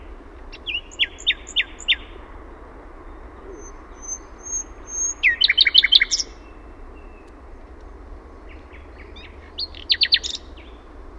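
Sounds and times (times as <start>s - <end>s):
common nightingale singing in Finland: 0.0s - 2.3s, 3.0s - 7.4s, 8.3s - 10.9s
faint low hum: 0.0s - 11.1s.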